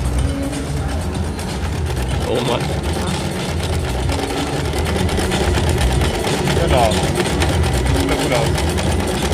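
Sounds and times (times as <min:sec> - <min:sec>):
sewing machine running at speed: 0:00.0 - 0:09.3
speech: 0:02.3 - 0:02.9.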